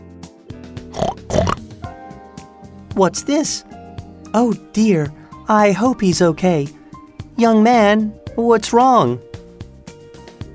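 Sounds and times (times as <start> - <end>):
pig grunting and snorting: 1.0 - 1.6
speech: 3.0 - 3.7, 4.3 - 6.8, 7.4 - 9.3.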